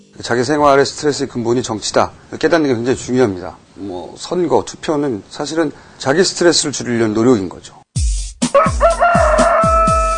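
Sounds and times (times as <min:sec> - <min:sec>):
speech: 0:00.2 - 0:07.8, 0:08.5 - 0:08.8
steady thumping beat: 0:08.0 - 0:10.1
rooster crowing: 0:08.5 - 0:10.1.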